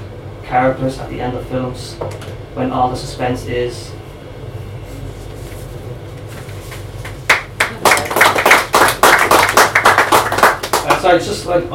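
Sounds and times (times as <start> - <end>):
speech: 0.5 - 4.0, 11.0 - 11.7
audience applauding after a poem: 7.0 - 11.2.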